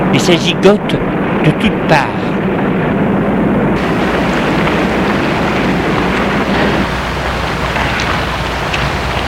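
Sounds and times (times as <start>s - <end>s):
speech: 0.1s - 2.3s
van engine roaring: 2.4s - 9.2s.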